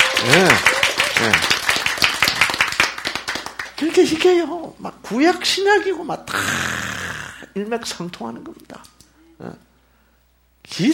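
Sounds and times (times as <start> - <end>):
audience applause: 0.0 - 4.0
speech: 0.2 - 1.3, 4.0 - 6.9, 7.6 - 9.6, 10.7 - 10.9.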